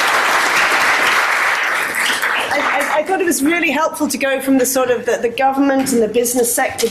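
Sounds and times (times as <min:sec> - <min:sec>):
crowd applauding: 0:00.0 - 0:03.1
speech: 0:03.0 - 0:06.8.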